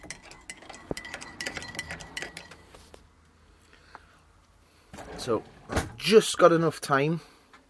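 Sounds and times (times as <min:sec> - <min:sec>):
metal spoon stirring in a cup: 0:00.0 - 0:02.8
speech: 0:05.2 - 0:07.3.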